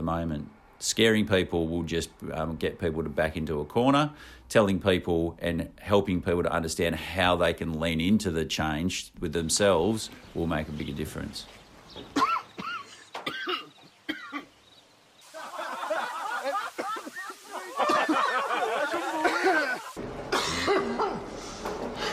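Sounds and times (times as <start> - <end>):
speech: 0.1 - 12.3
harsh hacking smoker's cough: 12.1 - 14.5, 16.7 - 18.3, 19.2 - 22.1
laughter: 15.2 - 21.2.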